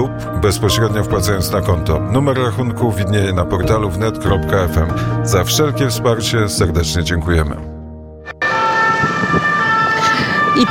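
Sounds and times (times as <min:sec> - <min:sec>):
speech: 0:00.0 - 0:07.8, 0:10.6 - 0:10.7
loud siren wailing: 0:08.3 - 0:10.7.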